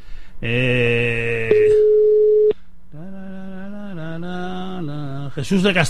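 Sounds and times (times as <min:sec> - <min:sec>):
speech: 0:00.4 - 0:01.1, 0:05.4 - 0:05.8
steady electronic telephone call tones ringing unanswered: 0:01.5 - 0:02.5.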